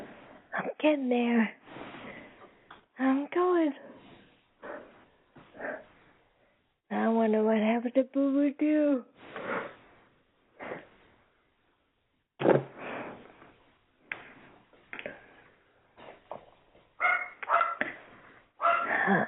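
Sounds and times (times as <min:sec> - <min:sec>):
speech: 0:00.8 - 0:01.6, 0:03.0 - 0:03.8, 0:07.3 - 0:09.1
dog barking at a person: 0:17.0 - 0:18.0, 0:18.6 - 0:19.0.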